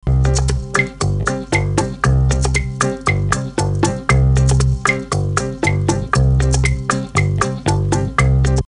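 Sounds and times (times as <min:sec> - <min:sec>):
mellotron playing Latin music: 0:00.0 - 0:08.7.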